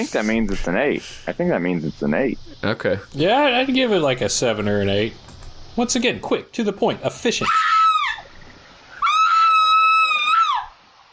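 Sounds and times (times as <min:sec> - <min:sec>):
speech: 0:00.0 - 0:07.8
brief trailing cry: 0:07.4 - 0:08.3, 0:08.9 - 0:10.8
person screaming: 0:07.4 - 0:08.3, 0:09.0 - 0:10.7.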